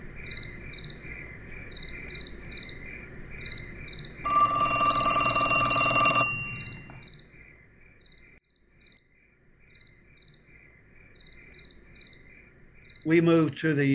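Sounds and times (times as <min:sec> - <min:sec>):
telephone bell ringing late at night: 0:04.2 - 0:07.0
speech: 0:13.1 - 0:13.9.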